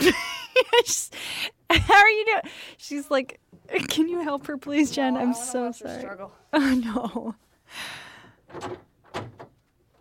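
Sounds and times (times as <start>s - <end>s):
speech: 0.1s - 9.3s
door bumping shut with dull thuds and a rattle: 8.4s - 9.9s.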